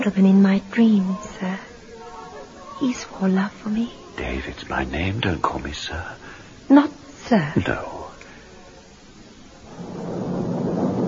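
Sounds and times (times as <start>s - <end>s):
speech: 0.0s - 1.6s, 2.8s - 8.0s
thunder rumbling before a storm: 9.5s - 11.0s.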